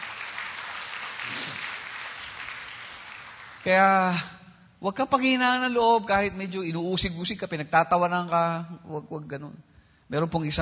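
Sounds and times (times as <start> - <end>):
church congregation applause: 0.0 - 4.2
speech: 3.6 - 10.5.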